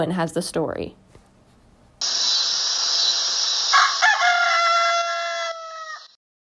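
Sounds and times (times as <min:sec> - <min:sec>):
speech: 0:00.0 - 0:01.0
rooster crowing: 0:03.7 - 0:06.2.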